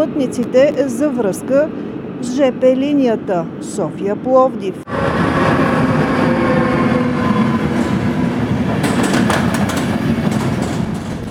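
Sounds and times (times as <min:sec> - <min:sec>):
speech: 0:00.0 - 0:04.8
metro train rumbling through Iskarsko Shose metro station in Sofia, Bulgaria: 0:00.0 - 0:11.2
metro train wheels clacking and squealing: 0:06.2 - 0:11.2.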